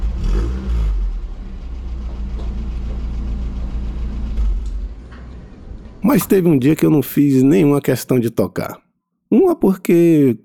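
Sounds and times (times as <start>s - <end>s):
Ford Corcel II engine rumbling while parking at a church: 0.0s - 7.0s
speech: 6.1s - 10.4s.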